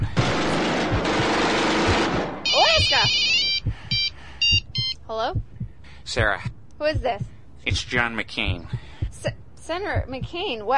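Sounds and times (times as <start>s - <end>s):
loud rapid gunfire-like noise: 0.0s - 2.4s
telephone with shrill trilling electronic ring: 2.5s - 5.0s
speech: 5.1s - 5.5s, 6.1s - 10.7s.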